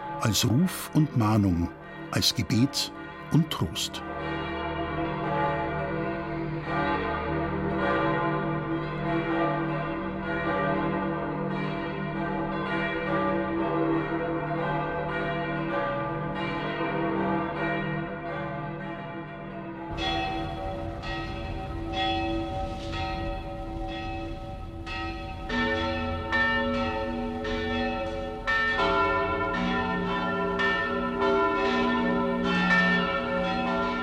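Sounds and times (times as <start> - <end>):
brighter higher church bells ringing: 0.0 - 4.6, 19.9 - 34.0
large church bells of St. Peter's in Rome pealing: 0.0 - 34.0
speech: 0.2 - 4.4.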